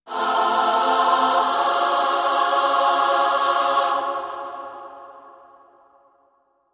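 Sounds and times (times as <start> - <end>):
choir singing in F: 0.0 - 6.1.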